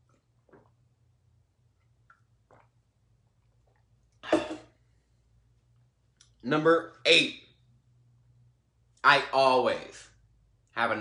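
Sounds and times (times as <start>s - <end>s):
faint low hum: 0.0s - 11.0s
person sipping water: 1.8s - 4.6s
speech: 6.4s - 7.4s, 9.0s - 10.1s, 10.8s - 11.0s.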